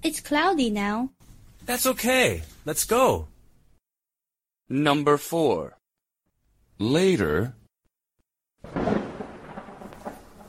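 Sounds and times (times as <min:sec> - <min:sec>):
speech: 0:00.0 - 0:03.3, 0:04.7 - 0:05.8, 0:06.8 - 0:07.6
rain falling: 0:08.6 - 0:10.4.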